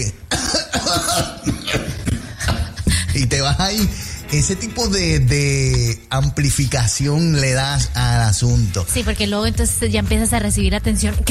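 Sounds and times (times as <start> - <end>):
speech: 0.0 - 0.2, 3.4 - 11.3
person coughing lightly: 0.3 - 2.9.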